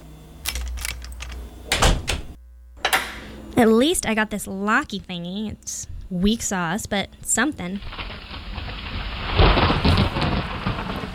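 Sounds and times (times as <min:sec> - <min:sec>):
speech: 0:03.6 - 0:08.0
heavy rain: 0:07.8 - 0:11.1.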